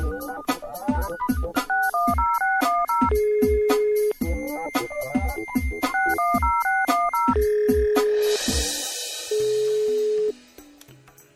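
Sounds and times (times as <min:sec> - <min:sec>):
telephone electronic keypad dialing beeps: 0:00.0 - 0:08.3, 0:09.3 - 0:10.3
telephone long steady ringing tones: 0:00.0 - 0:08.7, 0:09.3 - 0:10.4
hiss: 0:08.4 - 0:09.4.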